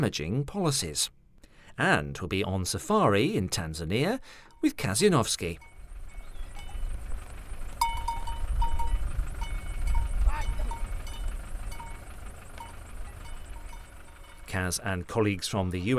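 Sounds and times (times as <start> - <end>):
speech: 0.0 - 1.2, 1.8 - 5.7, 14.6 - 15.9
faint scattered ringing tones: 4.2 - 15.1
cattle heading out to graze: 5.4 - 15.9.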